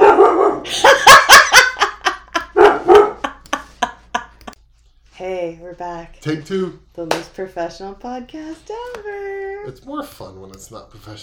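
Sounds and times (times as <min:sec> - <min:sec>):
dog barking loudly: 0:00.0 - 0:01.4, 0:02.5 - 0:03.3
laughter: 0:00.7 - 0:04.6
speech: 0:05.8 - 0:11.2.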